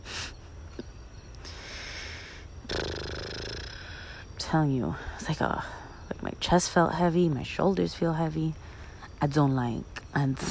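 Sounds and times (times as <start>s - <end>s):
deep breathing: 1.4s - 4.3s
speech: 4.5s - 8.6s, 9.2s - 10.4s.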